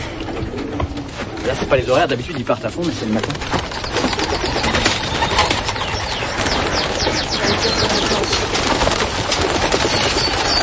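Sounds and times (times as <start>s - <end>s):
pigeon wings flapping and clattering: 0.0s - 10.6s
pigeons cooing and calling: 0.0s - 10.6s
speech: 1.5s - 4.8s.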